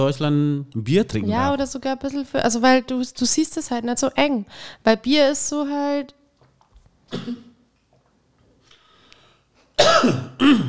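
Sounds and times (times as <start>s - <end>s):
speech: 0.0s - 6.2s, 7.1s - 7.5s, 9.8s - 10.6s
person coughing brought on by a grapefruit drink: 7.1s - 7.6s, 9.8s - 10.6s.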